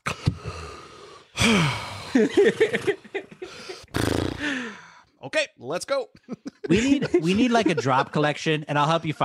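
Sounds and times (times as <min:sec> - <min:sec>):
person giving a sharp shocked gasp: 0:00.0 - 0:02.2, 0:03.4 - 0:05.2
speech: 0:01.4 - 0:03.2, 0:04.5 - 0:09.2
laughter: 0:02.0 - 0:03.8, 0:06.2 - 0:08.6.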